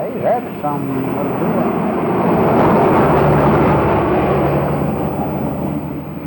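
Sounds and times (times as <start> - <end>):
pickup truck engine rumbling as it pulls in: 0.0 - 6.2
speech: 0.2 - 2.7.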